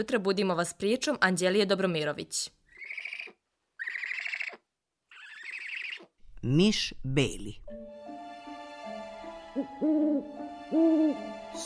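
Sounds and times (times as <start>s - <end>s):
speech: 0.0s - 2.6s, 6.4s - 8.0s, 9.6s - 11.6s
owl hooting: 2.7s - 6.1s, 9.6s - 11.3s.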